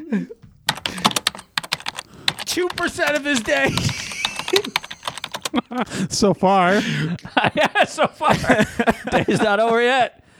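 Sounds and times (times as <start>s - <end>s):
laughter: 0.0s - 9.8s
speech: 0.1s - 0.4s, 2.6s - 4.7s, 5.7s - 10.2s
typing on a computer keyboard: 0.4s - 6.0s.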